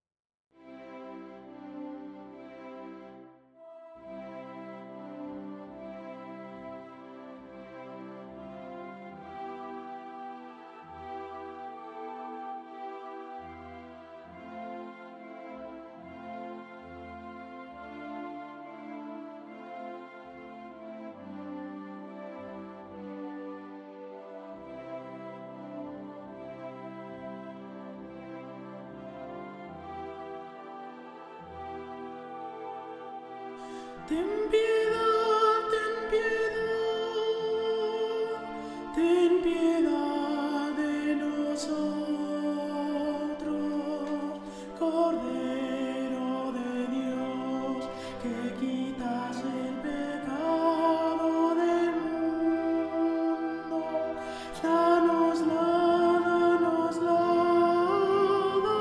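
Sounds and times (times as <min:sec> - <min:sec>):
contralto singing: 0:34.0 - 0:58.7.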